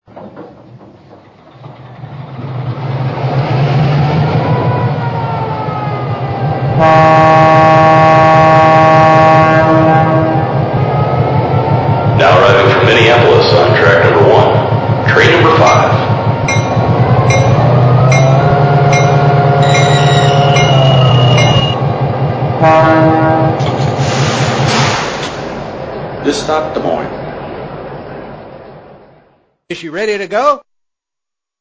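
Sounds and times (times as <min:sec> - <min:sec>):
EMD F3 locomotive: 0:00.0 - 0:30.5.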